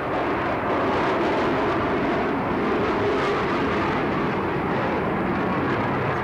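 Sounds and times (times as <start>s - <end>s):
jet turbine roar from an aircraft squadron flying overhead above low cloud: 0.0s - 6.2s.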